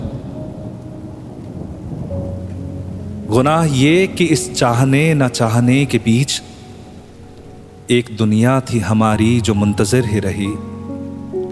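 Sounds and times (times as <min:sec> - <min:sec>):
steady rainfall: 0:00.0 - 0:09.0
deep rolling thunder rumbling: 0:00.0 - 0:10.7
speech: 0:03.3 - 0:06.5, 0:07.9 - 0:10.7.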